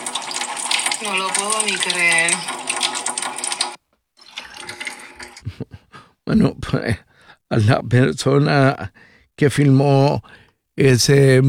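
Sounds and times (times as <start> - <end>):
water gushing from a household tap: 0.0 - 5.5
speech: 1.0 - 2.7, 6.3 - 11.4.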